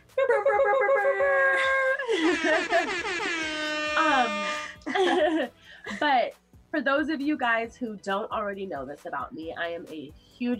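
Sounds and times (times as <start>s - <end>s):
laughter: 0.2s - 3.4s, 4.9s - 6.0s
loud blaring air horn blasts: 3.4s - 4.8s
speech: 4.0s - 10.5s.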